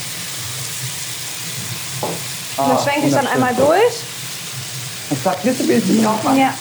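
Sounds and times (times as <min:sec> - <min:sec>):
sesame seeds sizzling in a hot pan: 0:00.0 - 0:06.6
knock or scrape: 0:01.6 - 0:02.3
speech: 0:02.0 - 0:04.1, 0:05.1 - 0:06.6.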